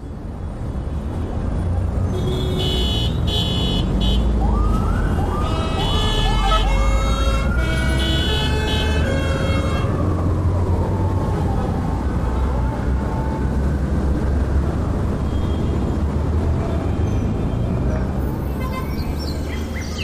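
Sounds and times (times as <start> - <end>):
busy street traffic rumbling: 0.0 - 20.0
car horns honking in traffic: 2.1 - 4.3, 5.4 - 9.9
rising and falling siren wailing: 4.4 - 13.5.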